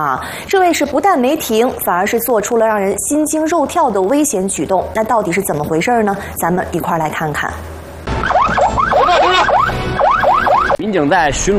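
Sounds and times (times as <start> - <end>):
speech: 0.0 - 7.8, 10.9 - 11.5
patrolling police car siren: 8.1 - 10.8.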